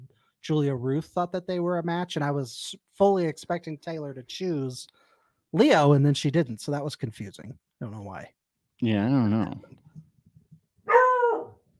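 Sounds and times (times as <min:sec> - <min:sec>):
speech: 0:00.4 - 0:09.8
drawn-out whiny dog bark: 0:10.9 - 0:11.6.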